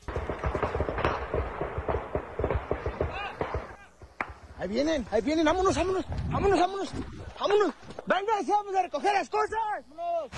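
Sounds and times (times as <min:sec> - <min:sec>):
bursts of rifle gunfire in avocado orchards: 0:00.0 - 0:06.0
speech: 0:04.6 - 0:10.3.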